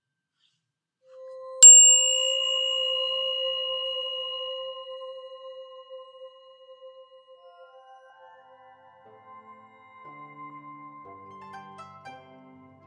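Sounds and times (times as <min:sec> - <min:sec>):
small meditation bell ringing: 0:01.6 - 0:07.0.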